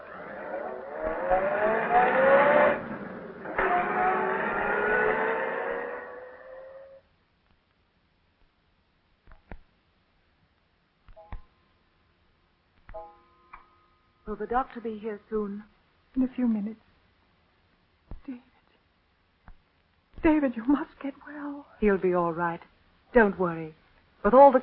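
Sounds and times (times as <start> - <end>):
car engine revving and pulling away: 0.0 - 7.0
speech: 14.3 - 16.9, 18.3 - 18.5, 20.2 - 24.6.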